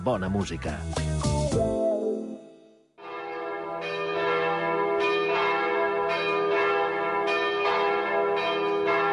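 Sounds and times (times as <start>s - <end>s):
speech: 0.0s - 1.8s
church bells ringing: 3.0s - 9.1s.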